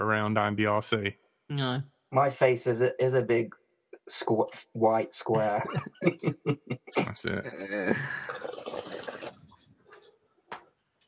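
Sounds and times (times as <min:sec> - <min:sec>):
laughter: 0:00.0 - 0:01.1, 0:02.2 - 0:03.4, 0:04.2 - 0:09.3
speech: 0:00.0 - 0:08.5
water pouring while watering houseplants: 0:07.7 - 0:09.6.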